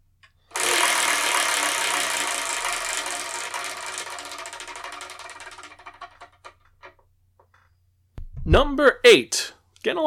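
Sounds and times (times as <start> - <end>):
spinning prize wheel rattling: 0.5 - 7.0
speech: 8.5 - 10.0.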